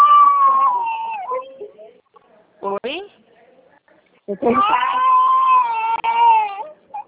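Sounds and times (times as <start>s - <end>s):
baby crying in long wailing bursts: 0.0s - 1.4s, 4.5s - 7.0s.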